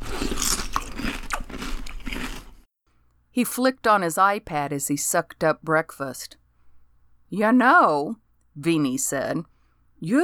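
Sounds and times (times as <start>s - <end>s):
chewing crunchy cornflakes: 0.0s - 2.6s
speech: 3.4s - 6.4s, 7.3s - 10.2s.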